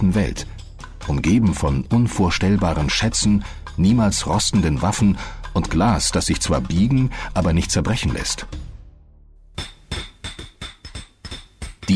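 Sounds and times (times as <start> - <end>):
speech: 0.0 - 8.7
hammer and chisel striking artificial stone: 9.6 - 11.9.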